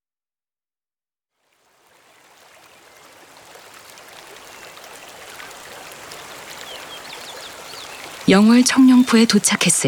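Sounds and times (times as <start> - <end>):
Seo River flowing at Cheongnyeongpo in Yeongwol, Korea: 1.4 - 9.8
faint bird chirps: 5.4 - 9.4
speech: 8.3 - 9.8.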